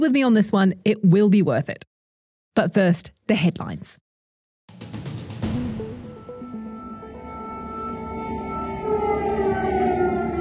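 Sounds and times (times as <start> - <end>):
speech: 0.0 - 1.9, 2.6 - 4.0
air raid sirens wailing across a city: 6.1 - 10.3.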